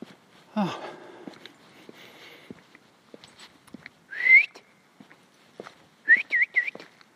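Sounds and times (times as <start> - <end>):
footsteps crunching: 0.0 - 7.1
person whistling to call a dog: 4.1 - 4.6, 6.1 - 6.8.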